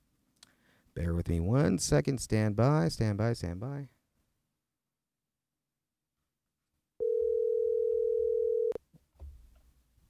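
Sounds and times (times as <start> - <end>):
speech: 1.0 - 4.0
telephone dial tone while placing a call: 7.0 - 8.8.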